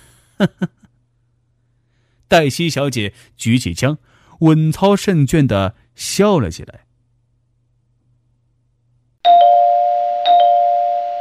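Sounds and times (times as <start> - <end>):
speech: 0.4 - 0.7, 2.3 - 6.8
doorbell chiming: 9.2 - 11.1.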